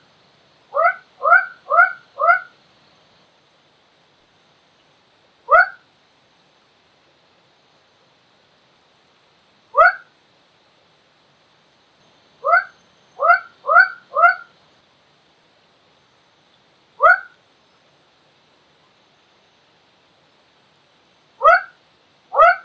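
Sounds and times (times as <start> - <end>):
quacking calls in Kledang Sayong Forest Reserve, Ipoh, Perak, Malaysia: 0.8 - 2.5, 12.4 - 14.5, 22.4 - 22.6.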